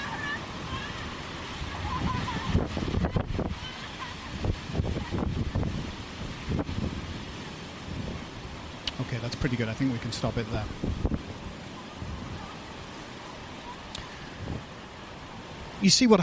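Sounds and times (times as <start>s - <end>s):
wind buffeting the microphone: 0.0s - 15.8s
waves crashing: 0.0s - 16.2s
speech: 9.2s - 11.1s, 15.8s - 16.2s.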